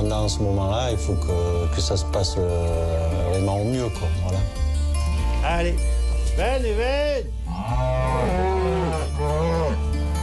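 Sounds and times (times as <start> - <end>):
speech: 0.3 - 4.7, 5.4 - 8.0
cows mooing: 7.5 - 10.2.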